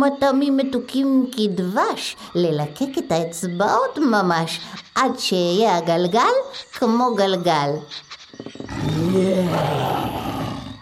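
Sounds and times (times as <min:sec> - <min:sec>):
speech: 0:00.0 - 0:10.3
lion roaring with short grunts: 0:08.6 - 0:10.8.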